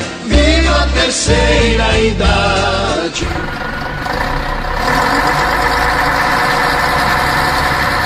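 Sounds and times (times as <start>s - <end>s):
speech: 1.0s - 4.5s
heavy bus engine rumbling with mechanical vibration: 1.6s - 8.0s.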